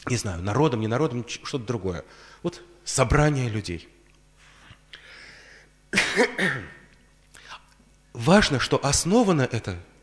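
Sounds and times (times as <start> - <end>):
speech: 0.1 - 4.0, 5.9 - 6.8, 8.2 - 9.9
faint breath: 4.4 - 5.8
harsh raspy coughs: 5.9 - 6.9.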